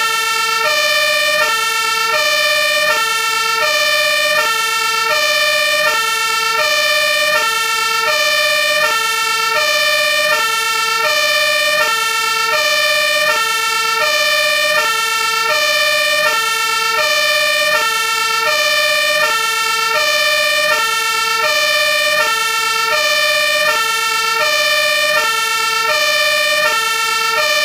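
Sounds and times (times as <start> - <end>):
German fire truck siren: 0.0 - 27.6.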